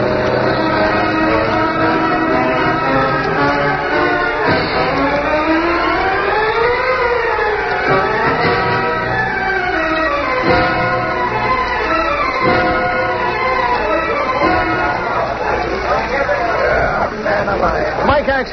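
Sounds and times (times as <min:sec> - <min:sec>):
car engine revving as the driver accelerates: 0:00.0 - 0:18.0.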